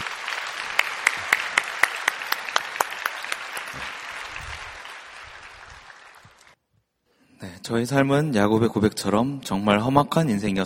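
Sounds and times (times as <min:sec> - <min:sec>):
congregation applauding: 0:00.0 - 0:06.6
speech: 0:07.4 - 0:10.6.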